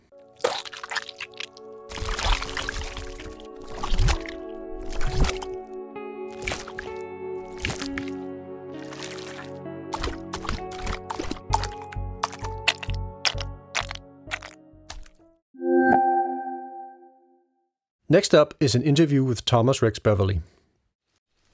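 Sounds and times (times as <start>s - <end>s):
thick gooey liquid squishing, dripping and plopping: 0.3s - 5.6s, 6.3s - 8.2s, 8.8s - 15.2s
brief tonal sound: 15.6s - 17.4s
speech: 18.1s - 20.6s.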